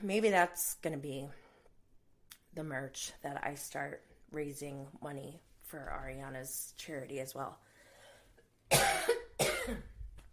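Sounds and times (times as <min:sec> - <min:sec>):
speech: 0:00.0 - 0:01.4, 0:02.6 - 0:07.7, 0:08.7 - 0:09.9
person coughing: 0:08.7 - 0:10.0.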